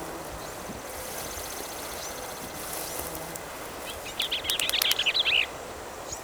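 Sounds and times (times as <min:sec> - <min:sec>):
quiet hiss: 0:00.0 - 0:06.2
Bell's vireo song chattering phrase: 0:03.6 - 0:05.5.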